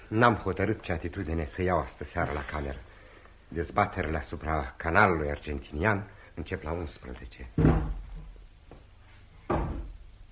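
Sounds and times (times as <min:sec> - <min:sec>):
speech: 0:00.1 - 0:02.9, 0:03.5 - 0:08.0
chair falling over in the next room: 0:07.6 - 0:08.4, 0:09.4 - 0:10.0.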